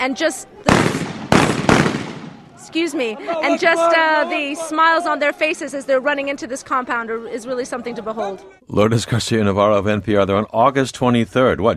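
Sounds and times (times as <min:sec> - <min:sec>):
speech: 0:00.0 - 0:01.0, 0:02.6 - 0:11.7
celebratory gunshots outdoors: 0:00.7 - 0:02.6.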